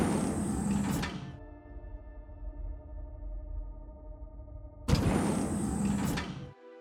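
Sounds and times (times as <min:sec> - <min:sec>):
lift door sliding with a mechanical whoosh: 0:00.0 - 0:01.4, 0:04.9 - 0:06.5.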